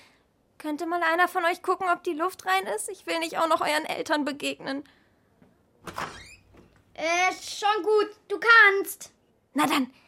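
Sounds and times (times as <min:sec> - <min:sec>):
speech: 0:00.6 - 0:05.0, 0:07.0 - 0:10.0
door swinging open with a short rattle: 0:05.8 - 0:06.8.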